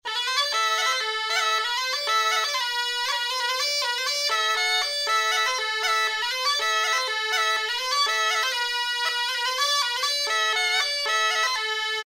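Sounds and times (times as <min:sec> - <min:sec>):
alboka melody in A: 0:00.0 - 0:12.0.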